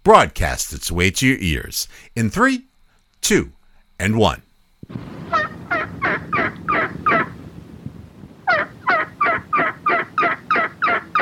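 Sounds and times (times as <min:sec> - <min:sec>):
speech: 0:00.0 - 0:05.2
imitated turkey gobble at a turkey calling competition in Memphis: 0:05.3 - 0:07.4, 0:08.4 - 0:11.2.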